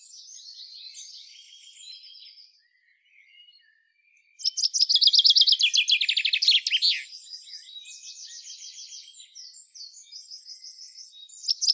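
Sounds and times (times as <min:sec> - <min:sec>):
common chaffinch Fringilla coelebs singing: 0:04.4 - 0:07.1, 0:11.4 - 0:11.7.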